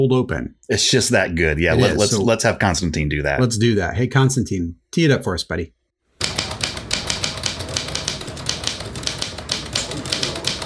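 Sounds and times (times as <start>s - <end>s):
speech: 0.0s - 5.8s
old Underwood 5 manual typewriter clacking: 6.2s - 10.6s.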